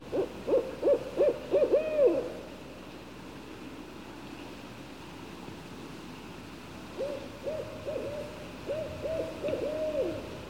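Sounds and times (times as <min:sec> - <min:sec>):
barred owl hooting: 0:00.1 - 0:02.4, 0:07.0 - 0:10.4.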